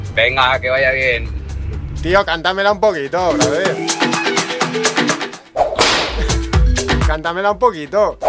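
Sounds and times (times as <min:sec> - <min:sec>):
speech: 0:00.2 - 0:01.4, 0:02.0 - 0:04.2, 0:07.1 - 0:08.2
rhythmic snapping hits: 0:03.3 - 0:07.2
whip crack: 0:05.6 - 0:06.2.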